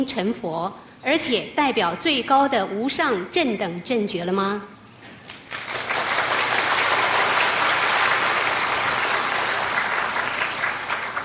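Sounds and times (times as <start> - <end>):
speech: 0.0 - 4.7
crowd applauding in approval: 5.4 - 11.2.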